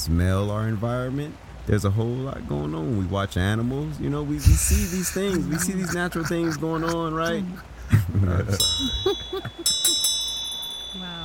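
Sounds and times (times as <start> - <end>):
speech: 0.0 - 9.6
person talking quietly: 4.4 - 8.6
laughter: 4.4 - 10.1
bell struck with a bright shimmering tone: 8.6 - 11.2.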